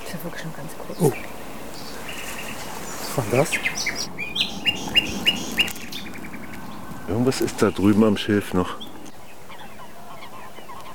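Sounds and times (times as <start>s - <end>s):
steady outdoor hiss: 0.0s - 10.9s
waterbirds honking near reeds at a reservoir: 0.0s - 10.9s
speech: 0.1s - 1.4s, 3.2s - 4.2s, 7.1s - 8.8s.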